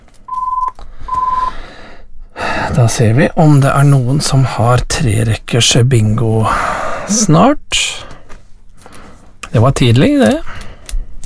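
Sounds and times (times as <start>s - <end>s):
electronic telephone ringing during a bingo game: 0.3s - 1.5s
speech: 2.8s - 8.1s, 9.5s - 10.6s.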